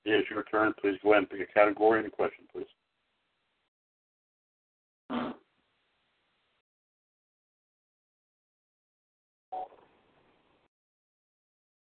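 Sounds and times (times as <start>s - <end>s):
speech: 0.1s - 2.6s
person farting: 5.1s - 5.5s.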